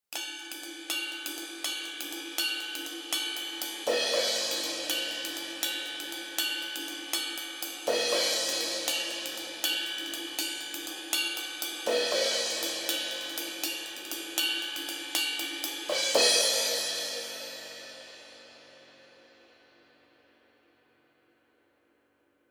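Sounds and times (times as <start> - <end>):
overhead microphones through MPEQ 1 EQ without transformer: 0.4 - 17.7.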